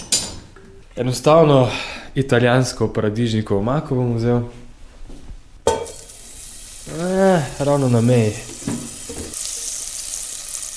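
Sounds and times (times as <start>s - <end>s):
speech: 1.0s - 4.6s, 7.0s - 8.5s
onion frying in a pan until golden for a tomato sauce: 5.8s - 10.7s.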